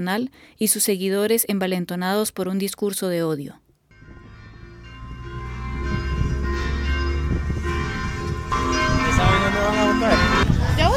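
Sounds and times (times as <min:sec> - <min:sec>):
speech: 0:00.0 - 0:03.6
church bells ringing marking the start of Mass: 0:03.9 - 0:10.9
outdoor crowd noise: 0:04.8 - 0:10.9.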